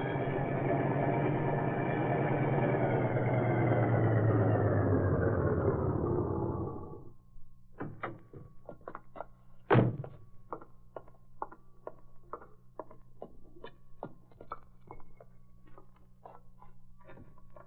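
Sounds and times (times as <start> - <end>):
loud car engine rumbling: 0.0 - 7.1.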